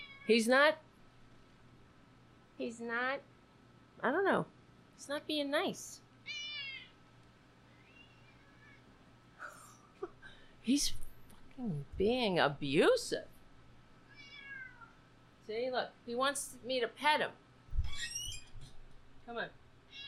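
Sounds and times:
low hum: 0:00.0 - 0:20.0
speech: 0:00.3 - 0:00.9, 0:02.6 - 0:03.3, 0:04.0 - 0:06.4, 0:10.6 - 0:11.0, 0:11.6 - 0:13.3, 0:15.5 - 0:17.4, 0:19.3 - 0:19.6
male cat meowing: 0:06.2 - 0:06.9, 0:14.1 - 0:15.0, 0:19.9 - 0:20.0.

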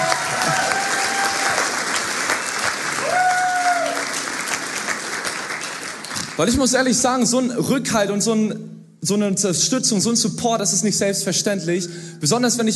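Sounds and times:
audience applause: 0:00.0 - 0:06.5
speech: 0:06.4 - 0:12.7.

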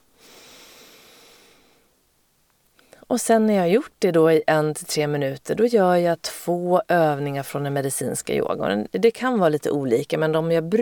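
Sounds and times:
long breath through both nostrils: 0:00.2 - 0:01.9
speech: 0:03.1 - 0:10.8.

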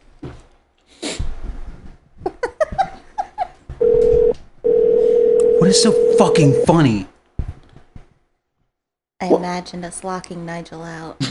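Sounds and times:
telephone ringing tone on the line: 0:03.8 - 0:06.8
speech: 0:05.8 - 0:07.1, 0:09.4 - 0:11.2.

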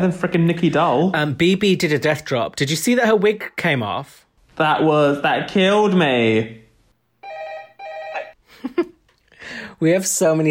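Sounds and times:
speech: 0:00.0 - 0:06.6, 0:08.6 - 0:08.9, 0:09.5 - 0:10.5
telephone ringing: 0:07.2 - 0:08.4.

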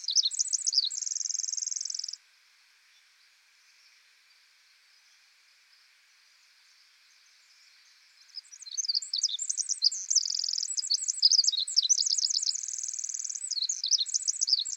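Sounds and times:
Pacific wren singing in forest: 0:00.0 - 0:02.2, 0:08.2 - 0:14.7.

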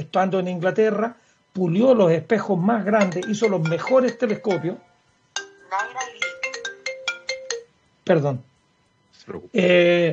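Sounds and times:
speech: 0:00.0 - 0:04.9, 0:08.1 - 0:08.5, 0:09.2 - 0:10.1
mobile phone ringtone with bright electronic melody: 0:03.0 - 0:07.9.

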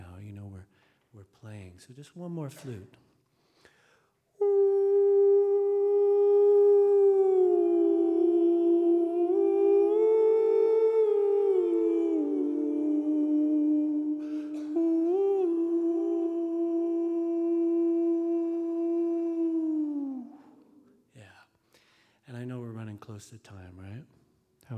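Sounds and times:
speech: 0:00.6 - 0:03.1
voice imitating an owl's hoot: 0:04.4 - 0:20.9.

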